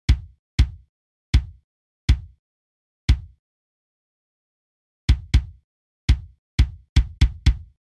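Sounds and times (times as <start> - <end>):
dry kick drum: 0.1 - 2.4, 3.1 - 3.4, 5.1 - 7.8.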